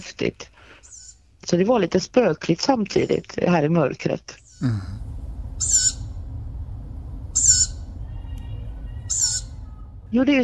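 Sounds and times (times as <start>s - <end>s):
speech: 0.0s - 0.5s, 1.4s - 5.0s, 10.1s - 10.4s
low constant rumble: 0.1s - 10.4s
owl calling with short high raspy screech: 0.8s - 1.2s, 4.4s - 4.6s, 5.6s - 6.2s, 7.3s - 10.1s.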